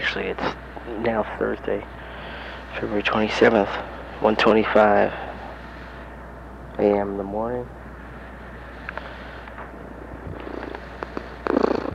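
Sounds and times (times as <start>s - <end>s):
speech: 0.2s - 2.0s, 2.7s - 5.2s, 6.8s - 7.8s
cat purring: 10.2s - 11.9s.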